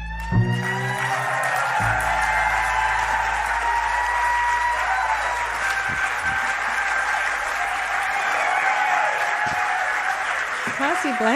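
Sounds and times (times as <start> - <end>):
final musical notes of a live song: 0.0 - 8.2
crowd cheering and applauding after a live song: 0.0 - 11.3
speech: 11.0 - 11.3.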